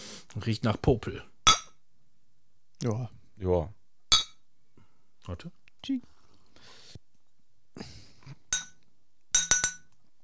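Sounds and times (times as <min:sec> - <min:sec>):
speech: 0:00.4 - 0:01.3, 0:02.8 - 0:03.8, 0:05.3 - 0:06.7, 0:07.8 - 0:08.0
glass bottles clinking together: 0:01.5 - 0:01.8, 0:04.1 - 0:04.4, 0:08.5 - 0:08.8, 0:09.4 - 0:09.9.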